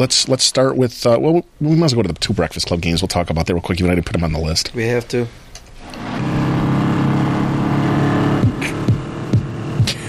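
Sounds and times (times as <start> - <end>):
speech: 0.0 - 6.1
car engine revving: 5.2 - 10.0.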